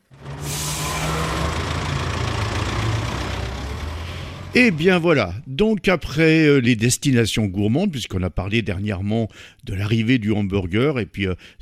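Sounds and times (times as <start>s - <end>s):
heavy bus engine idling: 0.0s - 5.5s
speech: 4.5s - 11.5s.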